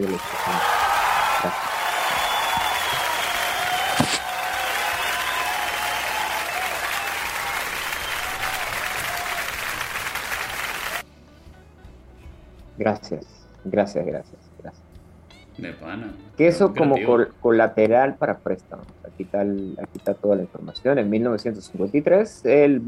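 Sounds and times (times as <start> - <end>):
speech: 0.0 - 1.8, 12.8 - 14.8, 15.6 - 22.8
large crowd applauding densely: 0.0 - 11.0
sharp clap-like knock: 3.9 - 4.3.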